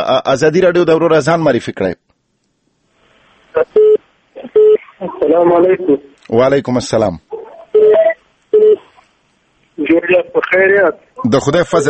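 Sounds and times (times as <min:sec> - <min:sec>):
speech: 0:00.1 - 0:02.0, 0:03.6 - 0:03.8, 0:05.2 - 0:07.3, 0:09.9 - 0:11.8
telephone tones after a call-in line is disconnected: 0:07.8 - 0:08.9.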